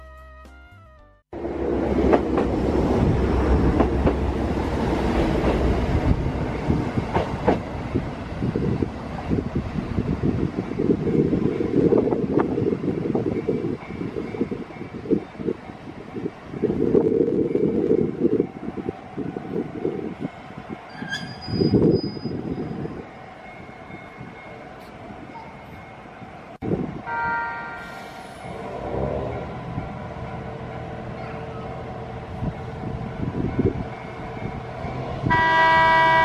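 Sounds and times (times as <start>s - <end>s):
train rumble and clatter passing beneath a pedestrian footbridge: 1.4s - 27.1s, 27.8s - 36.2s
wind buffeting: 1.4s - 27.4s, 28.4s - 36.2s
train wheel squeal: 20.9s - 22.9s.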